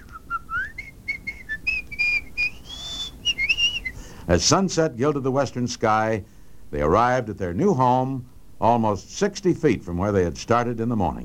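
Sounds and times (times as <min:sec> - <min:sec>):
person whistling a lively tune: 0:00.0 - 0:04.0
speech: 0:04.3 - 0:11.2.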